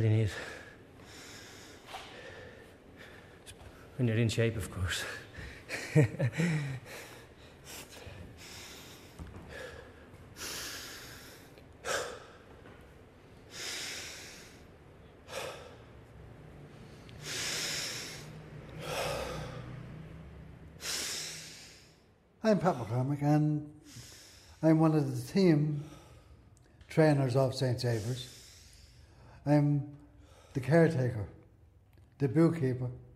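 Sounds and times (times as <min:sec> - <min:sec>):
speech: 0:00.0 - 0:00.6, 0:04.0 - 0:05.2, 0:06.0 - 0:07.1, 0:22.5 - 0:23.8, 0:24.6 - 0:26.0, 0:26.9 - 0:28.3, 0:29.4 - 0:30.0, 0:30.6 - 0:31.4, 0:32.2 - 0:33.0
person breathing deeply and heavily after physical exertion: 0:00.0 - 0:04.0, 0:05.0 - 0:23.1, 0:23.7 - 0:25.0, 0:25.6 - 0:26.9.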